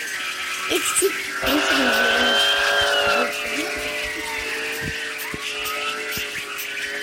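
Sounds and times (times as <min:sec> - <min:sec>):
speech: 0:00.7 - 0:02.2
vehicle-mounted siren wailing: 0:01.4 - 0:07.0.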